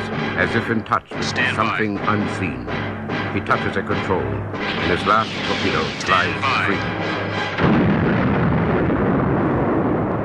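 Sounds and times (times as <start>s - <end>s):
speech: 0.4s - 7.9s
massive explosion of a huge space station: 7.0s - 10.2s.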